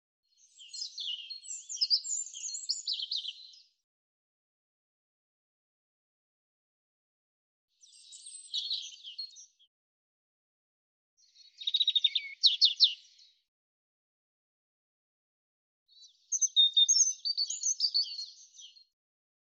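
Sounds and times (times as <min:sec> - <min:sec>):
European robin singing: 0:00.4 - 0:03.7, 0:07.8 - 0:09.6, 0:11.2 - 0:13.4, 0:15.9 - 0:18.9.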